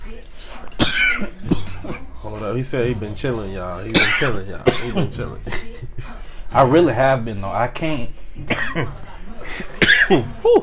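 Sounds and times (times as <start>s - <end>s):
harsh raspy coughs: 0.8s - 2.1s, 3.9s - 5.1s, 8.4s - 9.0s, 9.6s - 10.4s
speech: 2.5s - 5.7s, 6.5s - 9.0s, 10.1s - 10.6s
laughter: 4.6s - 6.3s, 8.6s - 10.6s.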